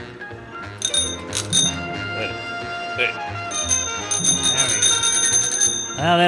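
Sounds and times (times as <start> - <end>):
hand bell ringing in the new year: 0.8 - 2.4, 3.5 - 6.2.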